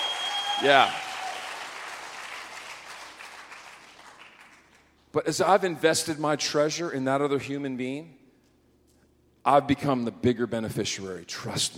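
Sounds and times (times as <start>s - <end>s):
crowd applauding with dense steady hand clapping: 0.0s - 4.9s
speech: 0.6s - 1.0s, 5.2s - 8.2s, 9.4s - 11.7s.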